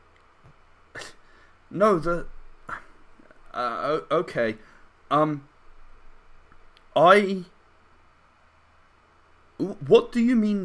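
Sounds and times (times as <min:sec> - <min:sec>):
person sneezing: 0:01.0 - 0:01.2
speech: 0:01.7 - 0:02.3, 0:03.6 - 0:05.5, 0:07.0 - 0:07.5, 0:09.6 - 0:10.6.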